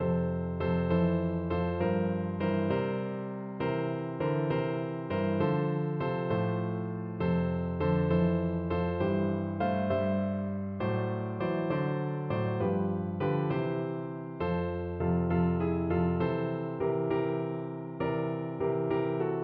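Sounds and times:
piano: 0.0 - 19.4.

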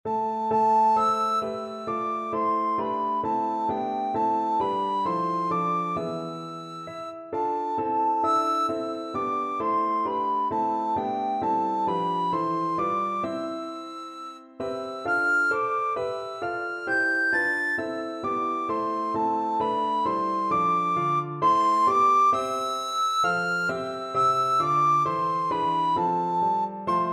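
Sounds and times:
recorder playing: 0.1 - 27.1.

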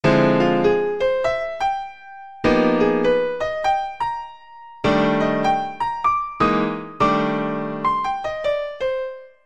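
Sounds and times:
piano playing a two five one chord progression: 0.0 - 9.4.

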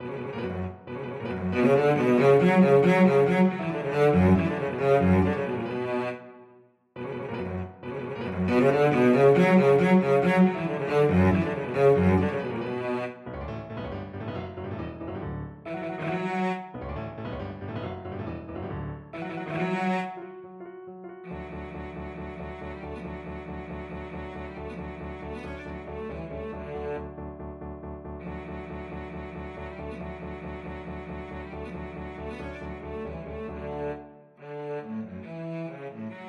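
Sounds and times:
cello playing: 0.0 - 13.4, 15.6 - 16.9, 19.0 - 36.2.

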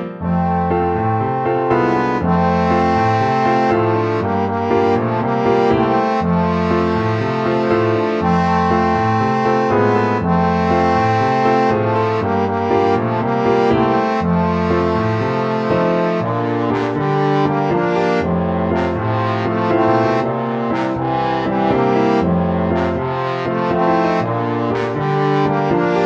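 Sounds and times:
trombone duet: 0.2 - 26.0.

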